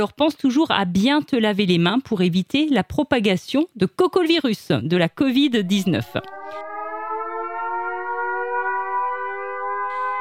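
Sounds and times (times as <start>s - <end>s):
speech: 0.0s - 6.7s
civil defense population alert siren wailing in Germany: 5.7s - 10.1s.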